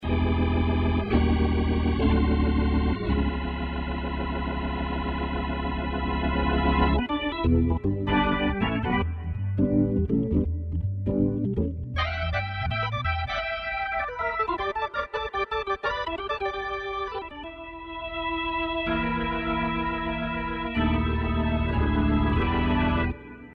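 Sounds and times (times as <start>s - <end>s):
keyboard organ: 0.0s - 23.5s.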